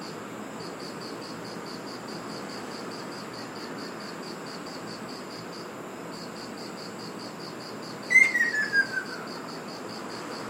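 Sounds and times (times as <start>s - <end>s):
faint insects chirping: 0.0s - 10.4s
ruddy kingfisher calling on Iriomote Island, Okinawa, Japan: 8.1s - 9.3s.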